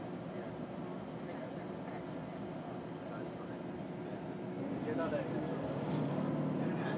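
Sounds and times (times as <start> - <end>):
diesel train pulling away from a station, heard from aboard: 0.0 - 6.9.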